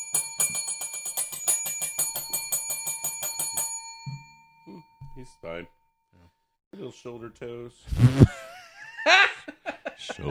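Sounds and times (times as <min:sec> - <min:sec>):
bell ringing rapidly: 0:00.0 - 0:05.7
speech: 0:05.2 - 0:05.8, 0:06.8 - 0:08.4, 0:10.0 - 0:10.2
laughter: 0:08.0 - 0:10.2.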